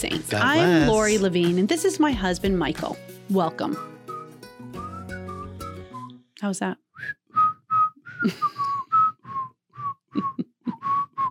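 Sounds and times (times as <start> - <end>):
speech: 0.0 - 3.9, 6.4 - 7.2, 8.2 - 8.6
person whistling a theme tune: 3.7 - 6.2, 7.0 - 11.2.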